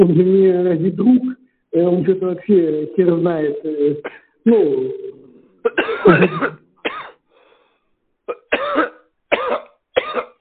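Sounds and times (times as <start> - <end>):
speech: 0.0 - 6.6
person coughing after choking on saliva: 4.0 - 4.3, 5.6 - 7.2, 8.3 - 10.3.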